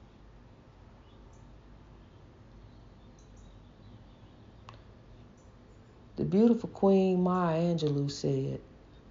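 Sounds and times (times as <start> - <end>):
bird chirps outdoors: 1.0 - 5.6
speech: 6.2 - 8.7.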